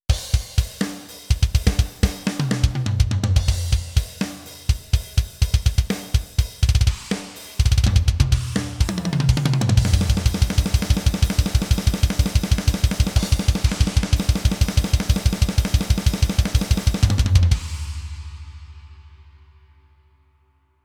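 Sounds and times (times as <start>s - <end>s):
drums playing: 0.0s - 19.3s.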